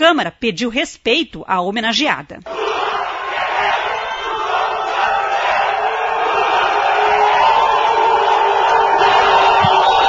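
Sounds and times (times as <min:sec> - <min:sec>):
speech: 0:00.0 - 0:02.6
large crowd shouting political chants in a city council chamber: 0:02.5 - 0:10.0.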